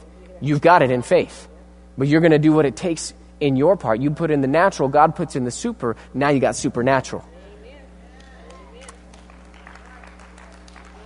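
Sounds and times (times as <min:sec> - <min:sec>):
speech: 0:00.4 - 0:07.3
audience clapping: 0:08.1 - 0:11.0.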